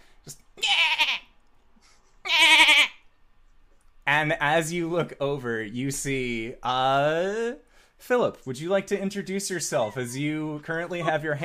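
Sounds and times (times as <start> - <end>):
goat bleating: 0.6 - 1.3, 2.2 - 3.0
speech: 4.1 - 11.4.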